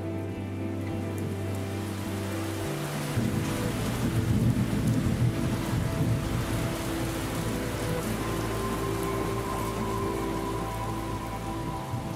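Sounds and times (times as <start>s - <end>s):
steady heavy monsoon rain pouring: 0.0s - 12.1s
low rolling monsoon thunder: 3.1s - 8.1s.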